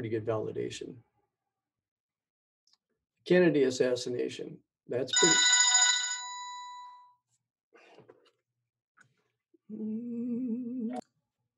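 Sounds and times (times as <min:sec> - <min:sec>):
speech: 0:00.0 - 0:01.1, 0:03.3 - 0:05.5, 0:09.7 - 0:11.1
telephone ringing with a bell-like tone: 0:05.2 - 0:07.0.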